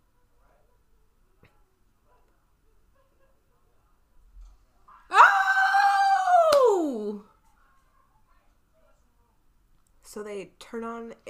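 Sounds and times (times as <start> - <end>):
old woman screaming: 5.1 - 7.2
speech: 10.2 - 11.2.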